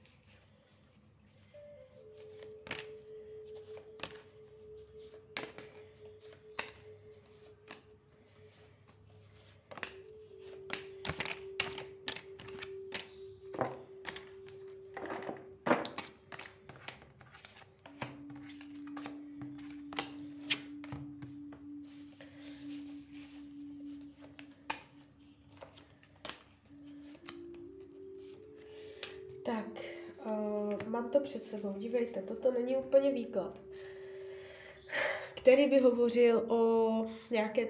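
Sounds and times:
tarot cards being shuffled: 0.0 - 29.4, 30.2 - 32.2
speech: 30.9 - 33.6, 35.5 - 37.6.

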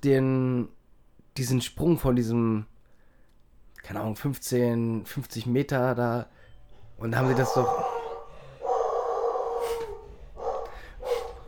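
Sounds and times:
speech: 0.0 - 0.8, 1.4 - 2.7, 3.8 - 6.4, 7.0 - 7.9
dog howling: 7.0 - 11.4.

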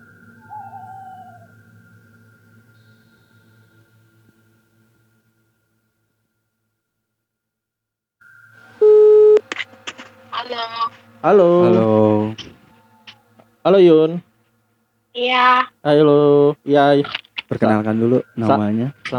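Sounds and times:
loud electronic beep as a call connects: 8.8 - 9.4
telephone line tone while placing a call: 8.8 - 9.4
speech: 10.5 - 12.6, 13.6 - 14.3, 15.2 - 19.1.

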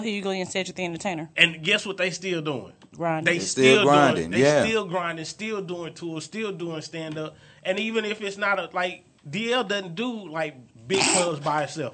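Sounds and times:
speech: 0.0 - 11.9
person sneezing: 10.9 - 11.4.

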